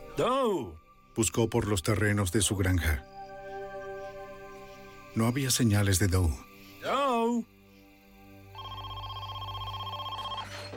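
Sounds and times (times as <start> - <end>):
speech: 0.2 - 3.2, 5.2 - 7.6
telephone ringing: 8.6 - 10.7.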